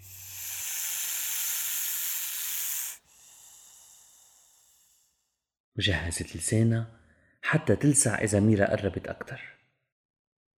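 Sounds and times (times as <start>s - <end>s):
large snake hissing defensively: 0.0s - 5.4s
speech: 5.8s - 9.6s.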